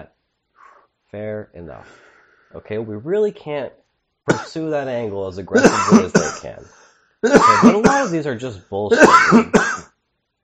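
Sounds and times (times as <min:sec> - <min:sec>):
speech: 0:01.1 - 0:09.9
single short harsh cough: 0:04.3 - 0:04.5, 0:05.6 - 0:08.2, 0:08.9 - 0:09.9.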